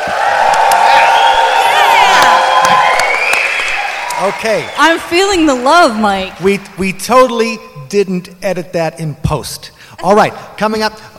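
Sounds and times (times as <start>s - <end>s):
live crowd cheering and whooping: 0.0s - 6.6s
live audience clapping: 0.0s - 7.6s
speech: 4.2s - 11.1s.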